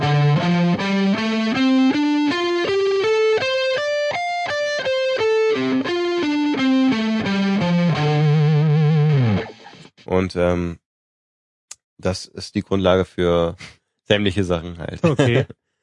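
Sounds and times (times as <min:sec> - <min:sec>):
distorted electric guitar playing a quick pentatonic scale run: 0:00.0 - 0:09.9
speech: 0:10.3 - 0:10.8, 0:12.0 - 0:15.6
laughter: 0:14.9 - 0:15.6.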